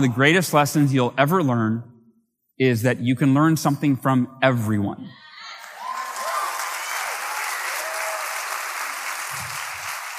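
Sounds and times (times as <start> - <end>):
speech: 0.0 - 1.9, 2.6 - 5.3
applause from a sizable audience: 5.6 - 10.1.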